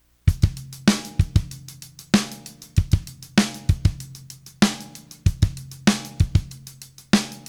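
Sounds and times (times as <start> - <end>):
drum pattern original signal: 0.3 - 7.4.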